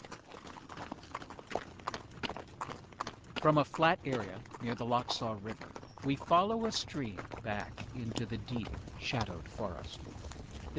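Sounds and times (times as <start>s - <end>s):
ridden horse's hooves clip-clopping at a walk: 0.0s - 10.7s
speech: 3.4s - 10.7s.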